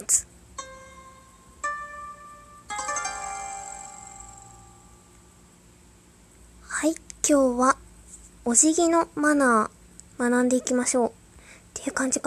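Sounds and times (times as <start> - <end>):
speech: 0.1 - 0.3, 6.8 - 7.8, 8.4 - 11.2, 11.8 - 12.2
Japanese-style sound effect of bright plucked tones and a rich chord: 0.6 - 5.2.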